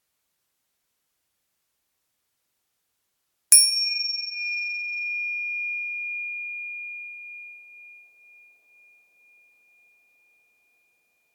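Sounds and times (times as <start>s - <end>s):
small meditation bell struck to begin a meditation exercise: 3.5s - 11.3s.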